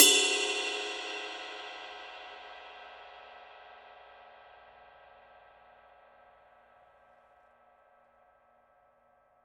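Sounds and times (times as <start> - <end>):
Paiste Twenty Master Deep Signature Groove ride cymbal: 0.0 - 3.1.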